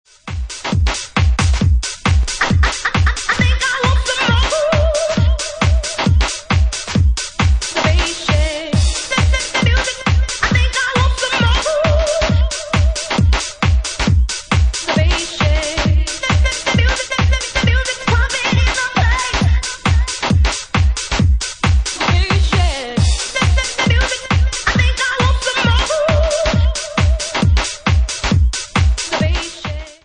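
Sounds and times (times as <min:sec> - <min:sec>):
powerful bass: 0:00.2 - 0:29.8.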